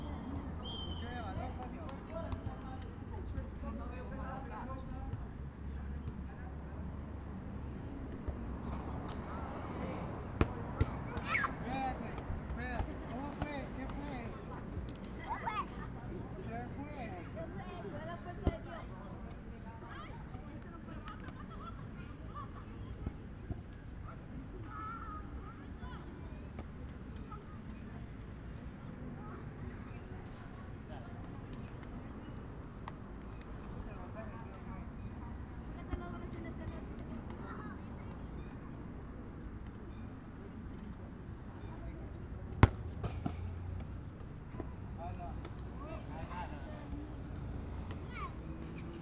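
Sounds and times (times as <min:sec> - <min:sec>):
traffic: 0:00.0 - 0:49.0
children at a football court: 0:09.0 - 0:12.2, 0:15.2 - 0:16.4, 0:24.1 - 0:26.4, 0:35.7 - 0:39.0, 0:45.7 - 0:49.0.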